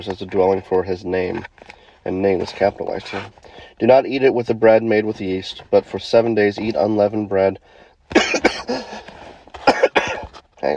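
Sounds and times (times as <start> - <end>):
speech: 0.0 - 8.9, 10.6 - 10.7
person coughing and clearing throat: 8.1 - 10.4.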